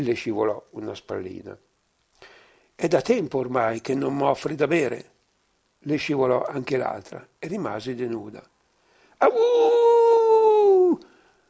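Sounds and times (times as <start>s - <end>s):
speech: 0.0s - 5.1s, 5.8s - 8.5s, 9.2s - 10.0s
person imitating a howl: 9.2s - 11.1s.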